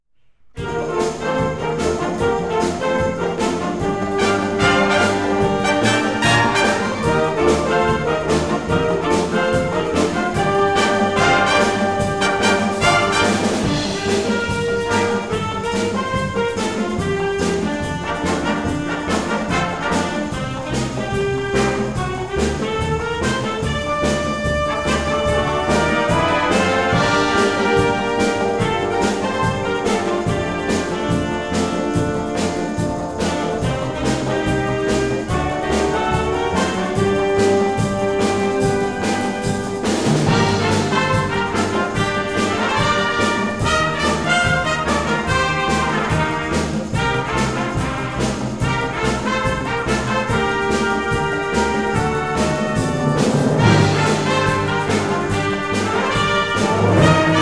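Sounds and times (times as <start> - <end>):
brass instruments playing: 0.5 - 57.4.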